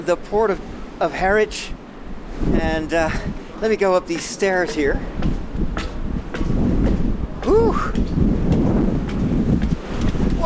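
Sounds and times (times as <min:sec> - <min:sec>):
speech: 0:00.0 - 0:01.8, 0:02.4 - 0:05.3, 0:07.4 - 0:08.3
strong wind on a ship's deck: 0:00.0 - 0:10.4.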